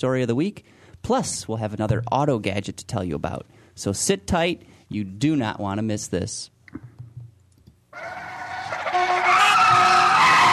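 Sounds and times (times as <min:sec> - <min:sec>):
speech: 0:00.0 - 0:06.9
car tires screeching in a skid: 0:08.0 - 0:10.5.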